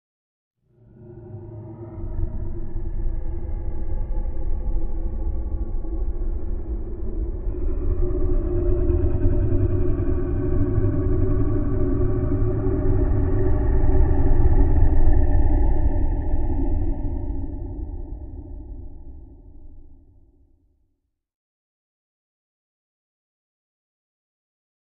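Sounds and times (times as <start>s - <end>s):
horror growling ambience: 0.7s - 20.0s.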